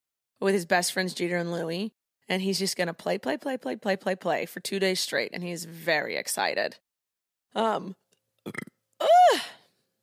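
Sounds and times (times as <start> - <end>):
speech: 0.4 - 6.8, 7.5 - 9.6
person burping: 8.5 - 8.8.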